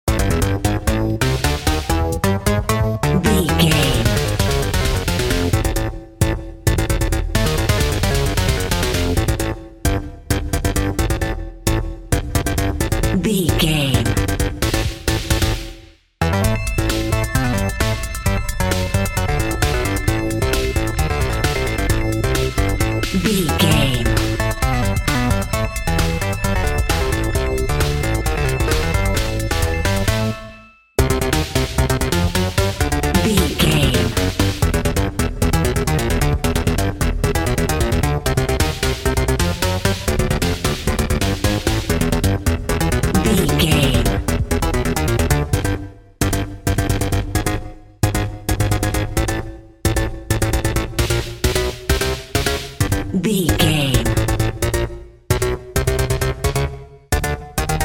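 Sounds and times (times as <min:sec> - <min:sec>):
intense video game level music: 0:00.1 - 0:57.8.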